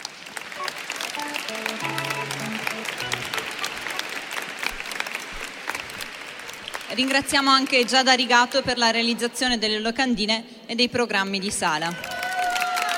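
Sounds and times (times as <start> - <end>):
audience applause at a choir concert: 0.0 - 8.0, 12.0 - 12.9
speech: 6.9 - 12.1.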